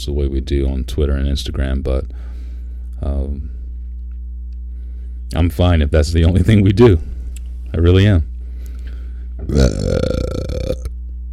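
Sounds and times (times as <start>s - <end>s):
speech: 0.0s - 2.3s, 3.0s - 3.6s, 5.3s - 7.1s, 7.7s - 8.3s, 9.4s - 10.2s
person belching: 9.4s - 10.9s.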